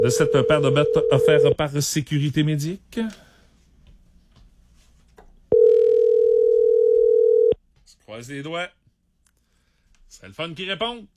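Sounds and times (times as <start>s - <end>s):
telephone dial tone while calling a contest winner: 0.0s - 1.5s, 5.5s - 7.6s
speech: 0.0s - 3.3s, 8.1s - 8.8s, 10.1s - 11.1s.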